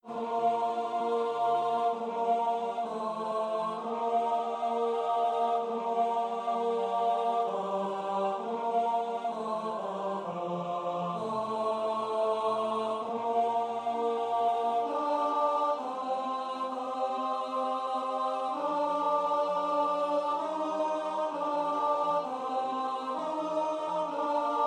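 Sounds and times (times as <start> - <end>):
tenor singing a psalm: 0.0 - 24.6.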